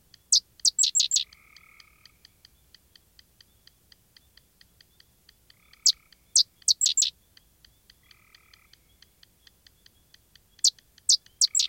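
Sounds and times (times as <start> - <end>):
sedge wren chattering song of dry chips: 0.0 - 11.6
yellow rail clicking: 0.0 - 11.6.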